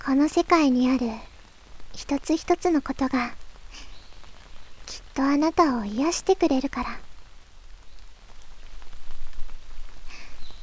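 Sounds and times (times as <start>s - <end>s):
speech: 0.0s - 1.3s, 2.0s - 3.9s, 4.9s - 7.1s
steady rain pattering on a hard surface: 0.0s - 10.6s.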